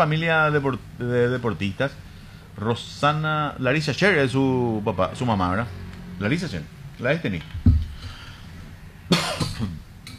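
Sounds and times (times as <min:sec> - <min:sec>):
speech: 0:00.0 - 0:07.6
person coughing harshly: 0:09.1 - 0:09.8.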